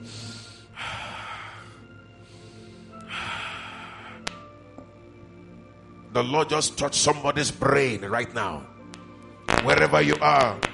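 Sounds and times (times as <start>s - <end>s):
long heavy breaths in and out: 0.0s - 4.5s
speech: 6.2s - 8.8s, 9.6s - 10.7s.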